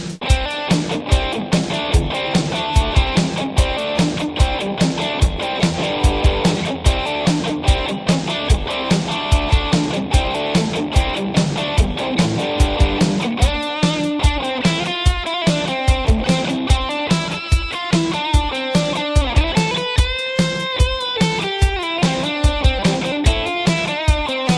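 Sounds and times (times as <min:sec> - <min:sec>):
guitar through distortion effects processor: 0:00.2 - 0:24.5.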